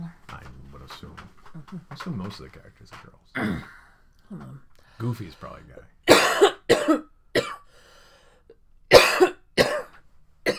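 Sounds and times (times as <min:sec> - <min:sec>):
speech: 0:01.7 - 0:03.7, 0:04.3 - 0:06.0, 0:06.7 - 0:07.1
person coughing harshly: 0:03.4 - 0:04.6, 0:06.1 - 0:07.7, 0:08.9 - 0:10.5.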